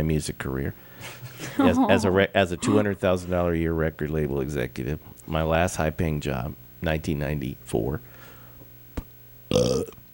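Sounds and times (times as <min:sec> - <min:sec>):
speech: 0:00.0 - 0:08.1, 0:09.5 - 0:10.0
loud guttural belch: 0:09.5 - 0:10.0.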